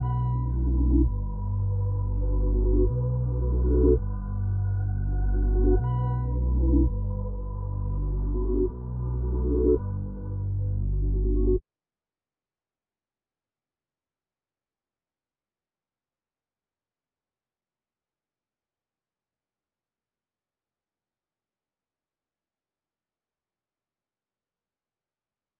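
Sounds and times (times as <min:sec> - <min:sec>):
reversed low melody loop: 0:00.0 - 0:11.6.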